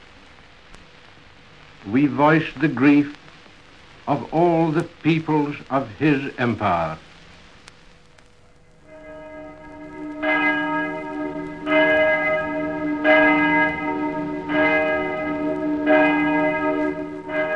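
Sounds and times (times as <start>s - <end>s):
speech: 1.8s - 3.2s, 4.1s - 7.1s
great cathedral bell tolling for a royal funeral: 8.9s - 17.5s.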